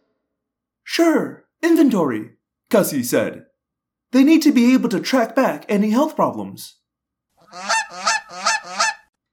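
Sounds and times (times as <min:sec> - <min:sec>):
speech: 0:01.0 - 0:03.5, 0:04.1 - 0:06.8, 0:07.5 - 0:08.4
goose honking in distress as a pill is forced into its mouth: 0:07.4 - 0:09.1.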